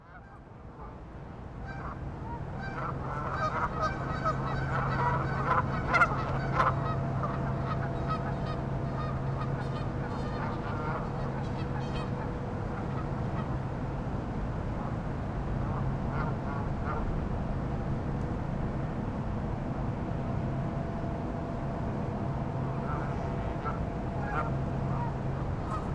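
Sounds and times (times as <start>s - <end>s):
flock of geese honking: 2.6s - 13.6s, 22.7s - 25.9s
low hum: 3.9s - 25.9s.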